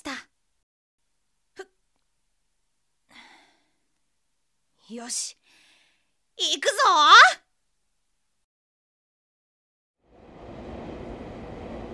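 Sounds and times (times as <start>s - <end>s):
speech: 4.9s - 5.6s, 6.4s - 7.4s
train rolling along the rails: 10.1s - 11.9s.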